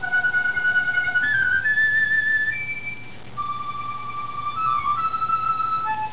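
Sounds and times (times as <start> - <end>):
piccolo: 0.0 - 6.1.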